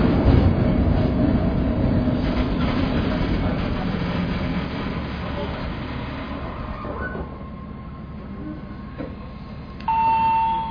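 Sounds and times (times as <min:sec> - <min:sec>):
one-man local train wheels and motor rumbling, heard from inside the carriage: 0:00.0 - 0:10.6
brief electronic chime tone in a train carriage: 0:09.9 - 0:10.6.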